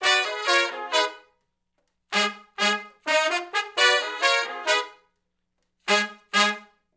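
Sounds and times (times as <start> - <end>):
R&B horn section riff in A-flat: 0.0 - 1.3, 2.1 - 5.0, 5.9 - 6.8.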